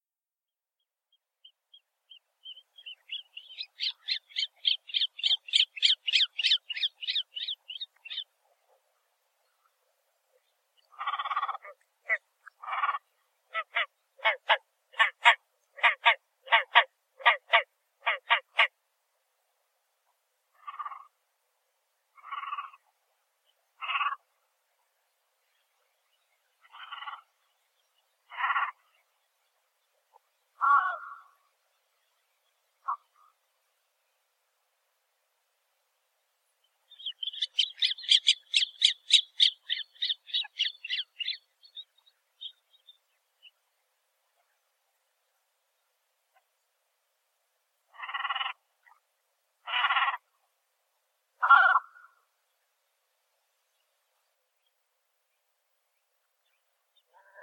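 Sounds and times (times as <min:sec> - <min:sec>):
great crested grebe Podiceps cristatus calling: 0:01.4 - 0:08.3, 0:10.8 - 0:18.7, 0:20.5 - 0:21.2, 0:22.2 - 0:22.9, 0:23.8 - 0:24.3, 0:26.6 - 0:27.4, 0:28.3 - 0:28.9, 0:30.6 - 0:31.4, 0:36.9 - 0:42.6, 0:47.9 - 0:48.6, 0:49.6 - 0:50.3, 0:51.4 - 0:52.2.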